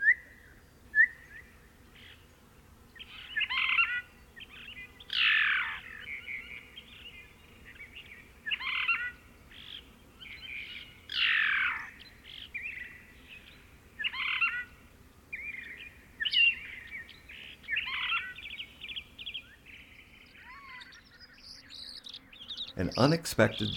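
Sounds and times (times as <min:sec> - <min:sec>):
faint hum: 0:00.0 - 0:23.7
Phainopepla singing churring phrases: 0:03.0 - 0:23.7
speech: 0:22.8 - 0:23.7.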